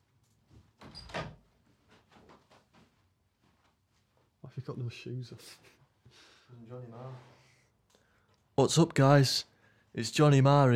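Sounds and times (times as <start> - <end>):
door opening and closing: 0.7 - 1.5
soft knocks and shuffles: 1.4 - 4.4
speech: 4.6 - 5.8, 6.5 - 7.3, 8.6 - 10.7.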